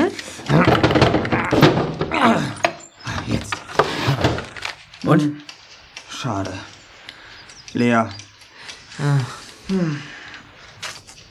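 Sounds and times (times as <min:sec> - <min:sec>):
locked drawer yanked hard, thumping and rattling: 0:00.0 - 0:04.8
speech: 0:05.1 - 0:05.4, 0:07.8 - 0:08.2, 0:09.0 - 0:10.1.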